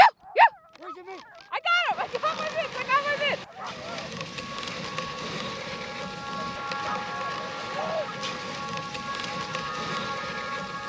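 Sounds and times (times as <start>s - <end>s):
sled dogs yelping: 0.0s - 2.2s, 3.4s - 4.1s
sled dog paws digging into snow: 0.8s - 10.8s.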